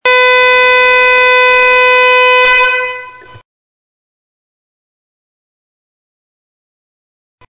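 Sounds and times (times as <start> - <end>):
air horn blast: 0.0 - 3.4.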